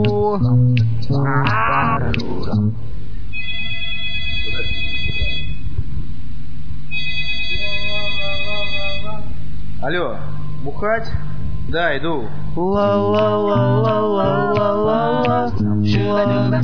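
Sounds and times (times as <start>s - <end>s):
brief wavering vocal sound: 0.0s - 2.8s, 12.4s - 16.6s
low murmur: 0.0s - 2.9s, 11.2s - 16.6s
speech: 0.2s - 3.1s, 9.8s - 16.6s
electronic telephone ring: 3.4s - 5.6s, 6.9s - 9.1s.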